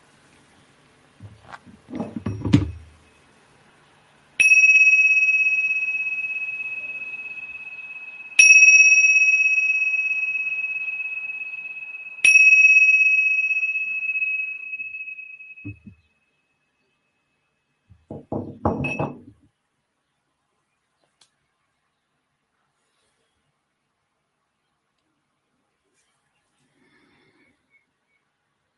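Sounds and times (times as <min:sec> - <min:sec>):
thump: 0:01.2 - 0:02.8
bell struck and ringing: 0:04.4 - 0:16.0, 0:18.8 - 0:19.3.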